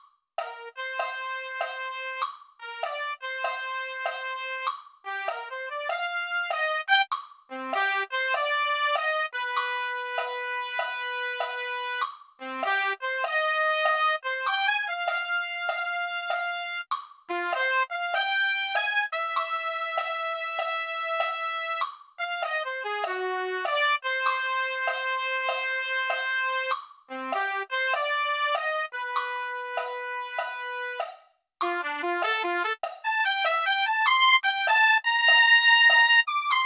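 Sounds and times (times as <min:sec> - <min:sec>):
trumpet playing jazz tune: 0:00.5 - 0:31.0, 0:31.7 - 0:36.6.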